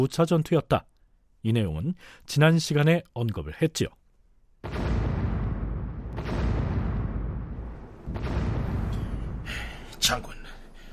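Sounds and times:
speech: 0.0 - 4.0, 10.0 - 10.4
distant cannon fire with rumbling echo: 4.6 - 10.0.

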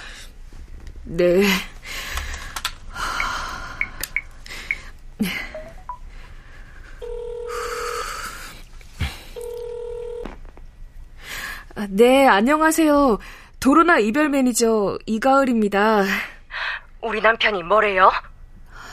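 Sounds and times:
speech: 1.0 - 1.7, 12.0 - 16.3, 17.0 - 18.3
breathy noises: 1.5 - 9.6
electronic ringback tone of an outgoing phone call: 5.6 - 6.0, 7.0 - 8.2, 9.4 - 10.3.

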